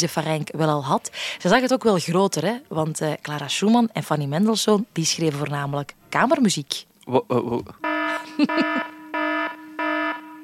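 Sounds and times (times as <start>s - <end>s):
speech: 0.0s - 7.8s
harsh electronic alarm sound effect buzzing: 7.8s - 10.4s
laughter: 8.1s - 9.0s.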